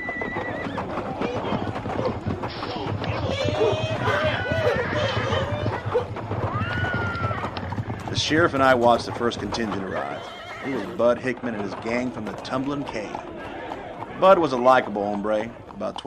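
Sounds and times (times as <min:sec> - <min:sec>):
several horses galloping: 0:00.0 - 0:16.0
indistinct voices: 0:00.7 - 0:16.0
speech: 0:08.3 - 0:13.4, 0:14.2 - 0:16.0.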